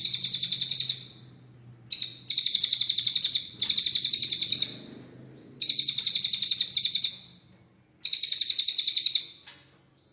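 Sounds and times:
Cililin bird giving bright rapid trills of high pulsed notes: 0.0s - 1.3s, 1.9s - 4.9s, 5.6s - 7.4s, 8.0s - 9.4s.

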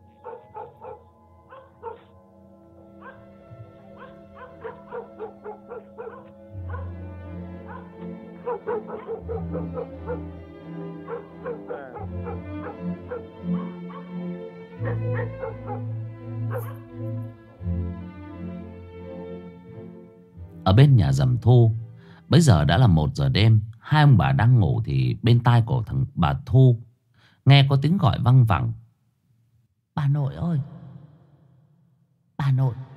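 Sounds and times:
dogs barking in a village at night: 0.0s - 2.2s, 2.9s - 17.3s
speech: 20.7s - 26.8s, 27.4s - 28.8s, 32.6s - 32.8s.

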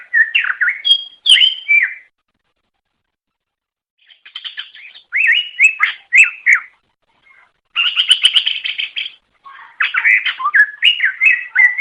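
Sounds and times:
greater green leafbird singing whistled slurs and buzzy trill: 0.0s - 2.1s, 4.0s - 6.7s, 7.3s - 11.7s.

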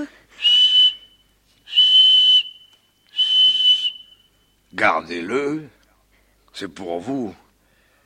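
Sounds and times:
handheld whistle blasts: 0.4s - 4.6s
speech: 4.8s - 5.8s, 6.6s - 7.4s.

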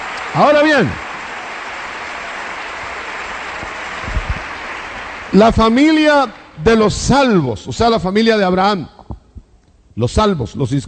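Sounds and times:
church congregation applauding during a sermon: 0.0s - 6.6s
speech: 0.3s - 1.1s, 5.3s - 9.0s, 10.0s - 10.8s.

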